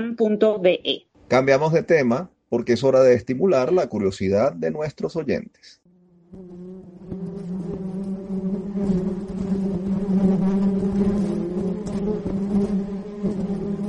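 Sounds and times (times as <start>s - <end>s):
speech: 0.0s - 6.6s
swarm of many bees buzzing: 6.1s - 13.8s.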